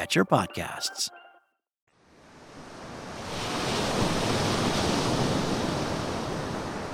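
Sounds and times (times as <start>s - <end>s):
speech: 0.0s - 1.2s
ocean waves breaking on a windy beach: 2.2s - 6.9s.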